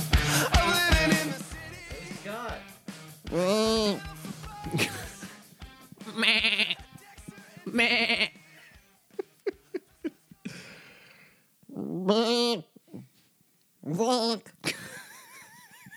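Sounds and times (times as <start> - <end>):
laughter: 0.1 - 1.5, 4.5 - 5.3, 7.7 - 10.4, 14.7 - 15.9
goat bleating like human screams: 3.3 - 5.1, 5.9 - 8.7, 11.7 - 13.1, 13.9 - 14.5.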